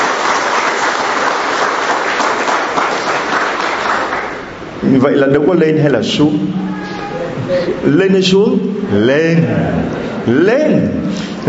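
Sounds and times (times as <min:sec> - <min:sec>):
crowd applauding warmly: 0:00.0 - 0:04.6
speech: 0:04.9 - 0:06.7, 0:07.5 - 0:11.4.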